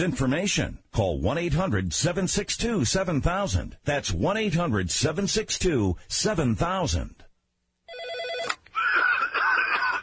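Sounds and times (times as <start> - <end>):
speech: 0.0 - 7.2
old PBX office phone system ringing: 7.9 - 8.6
laughter: 8.8 - 10.0.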